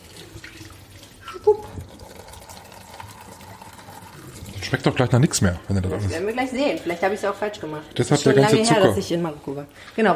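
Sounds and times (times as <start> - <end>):
tea rinse water pouring into a sink: 0.0 - 8.4
speech: 1.4 - 1.8, 4.8 - 10.1.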